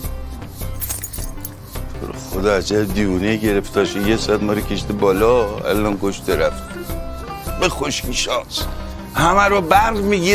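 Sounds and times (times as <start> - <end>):
bunch of keys jingling as they are handed over: 0.6 - 1.8
speech: 2.0 - 6.7, 7.6 - 10.3.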